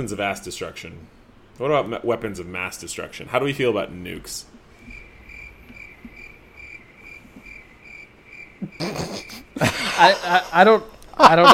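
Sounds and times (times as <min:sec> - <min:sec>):
speech: 0:00.0 - 0:05.0, 0:08.8 - 0:11.5
crickets chirping at night: 0:04.7 - 0:10.6
laughter: 0:08.6 - 0:11.5.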